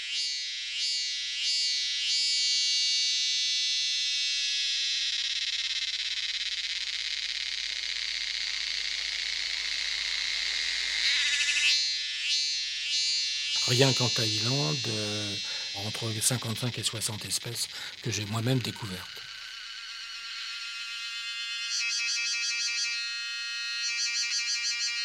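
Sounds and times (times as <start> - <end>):
Thai cicada Dundubia terpsichore calling: 0.0 - 25.0
speech: 13.7 - 19.3.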